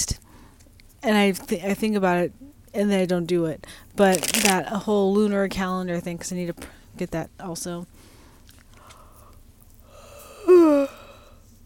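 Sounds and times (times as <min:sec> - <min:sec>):
speech: 0:01.0 - 0:08.1
person yawning: 0:10.2 - 0:11.3.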